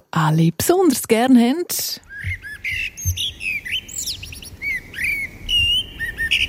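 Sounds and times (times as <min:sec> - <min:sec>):
speech: 0:00.2 - 0:03.2
several birds chirping and twittering: 0:02.0 - 0:06.4.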